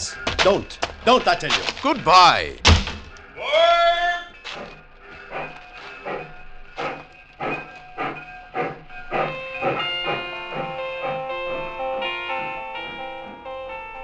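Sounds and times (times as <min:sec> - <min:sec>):
speech: 0:00.1 - 0:02.7
sustained whistle-like tone: 0:03.8 - 0:11.2
steam train chuffing while pulling away: 0:04.6 - 0:13.5.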